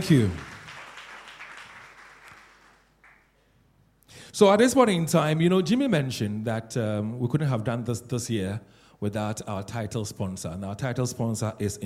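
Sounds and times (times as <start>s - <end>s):
speech: 0.0s - 0.4s, 4.4s - 11.8s
crowd applauding at a school debating competition: 0.0s - 3.4s.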